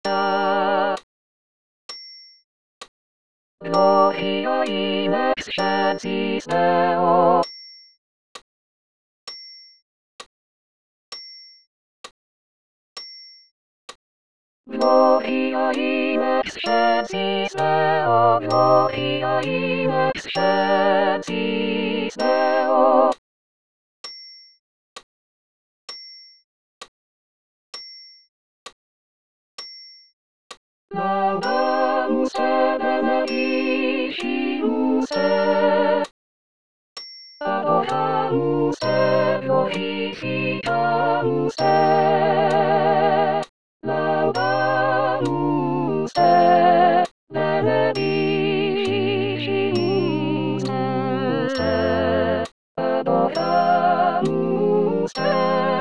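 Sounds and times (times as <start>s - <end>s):
vocals: 0.0s - 1.1s, 3.6s - 7.6s, 14.7s - 23.2s, 30.9s - 36.2s, 37.4s - 55.8s.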